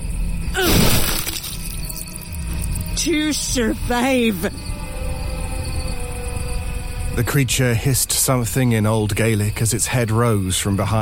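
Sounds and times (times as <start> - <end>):
low steady background: 0.0 - 11.0
stone smashing through a skull: 0.6 - 1.8
speech: 3.0 - 4.7, 7.2 - 11.0.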